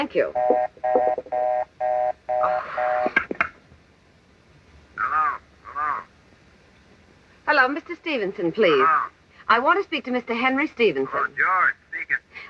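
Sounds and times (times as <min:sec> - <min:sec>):
speech: 0:00.0 - 0:01.5, 0:07.5 - 0:12.2
telephone line ringing in short electronic bursts: 0:00.4 - 0:03.2.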